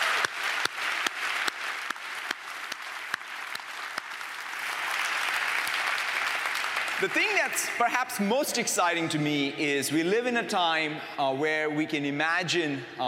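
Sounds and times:
audience applause in a room full of people: 0:00.0 - 0:08.2
speech: 0:07.0 - 0:13.0.

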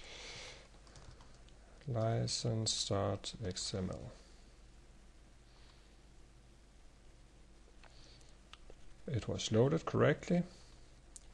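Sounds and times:
low hiss: 0:00.0 - 0:11.3
typing on a computer keyboard while entering text into software: 0:00.8 - 0:01.4
speech: 0:01.8 - 0:04.2, 0:09.1 - 0:10.6.

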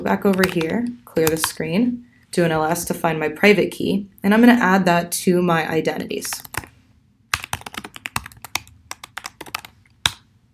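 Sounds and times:
speech: 0:00.0 - 0:06.5
typing a passphrase on a computer keyboard: 0:00.3 - 0:01.6, 0:06.3 - 0:06.7, 0:07.3 - 0:10.2.

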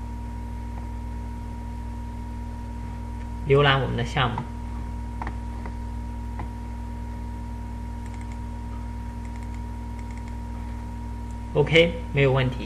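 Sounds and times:
constant low electrical hum: 0:00.0 - 0:12.6
speech: 0:03.5 - 0:04.6, 0:11.6 - 0:12.6
credentials being typed on a computer keyboard: 0:08.0 - 0:08.4, 0:09.2 - 0:10.4.

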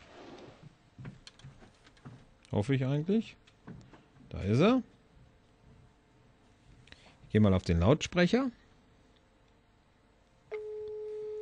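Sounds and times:
speech: 0:02.5 - 0:03.4, 0:04.4 - 0:04.9, 0:07.3 - 0:08.6
steady electronic telephone ringing tone: 0:10.5 - 0:11.3.

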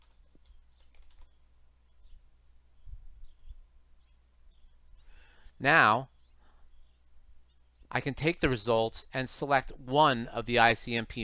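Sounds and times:
typing on a computer keyboard: 0:00.0 - 0:01.4
speech: 0:05.6 - 0:06.1, 0:07.9 - 0:11.2.

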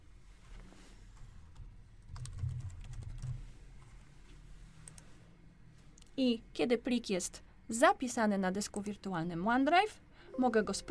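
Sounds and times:
typing on a computer keyboard: 0:02.1 - 0:03.4
speech: 0:06.2 - 0:10.8.

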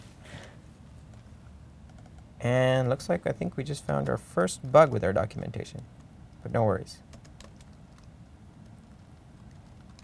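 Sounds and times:
low steady hum: 0:00.0 - 0:10.0
typing on a computer keyboard: 0:01.9 - 0:02.2, 0:07.1 - 0:10.0
speech: 0:02.4 - 0:07.1.

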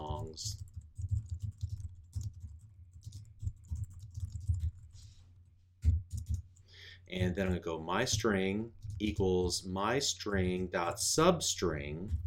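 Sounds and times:
typing on a computer keyboard: 0:00.0 - 0:04.9, 0:05.8 - 0:06.5, 0:07.2 - 0:09.4, 0:12.0 - 0:12.2
speech: 0:00.3 - 0:00.6, 0:07.1 - 0:12.2.

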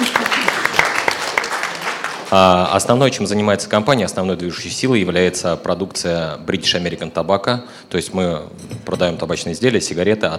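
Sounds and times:
audience applause at a corporate anniversary presentation: 0:00.0 - 0:02.6
speech: 0:02.3 - 0:10.3.

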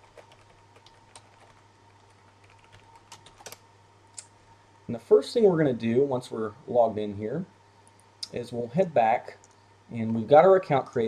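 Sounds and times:
computer keyboard typing as login credentials are entered: 0:00.0 - 0:03.6
speech: 0:04.9 - 0:07.6, 0:08.3 - 0:11.0.

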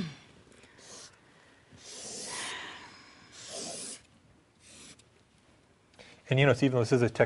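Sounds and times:
pen scratching on paper while drawing: 0:03.4 - 0:05.0
speech: 0:06.3 - 0:07.2.

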